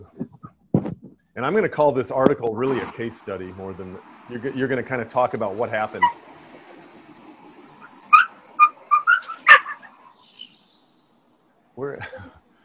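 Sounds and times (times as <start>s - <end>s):
speech: 1.4s - 6.2s
dog giving sharp high yips and barks: 4.3s - 10.2s.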